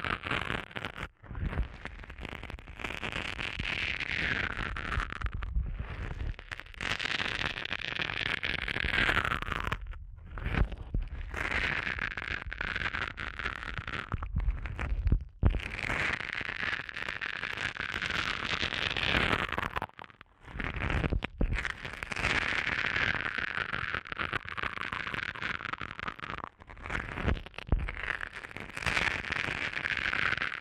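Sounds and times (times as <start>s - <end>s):
muffled rubbing and crackling over the ear: 0.0s - 30.5s.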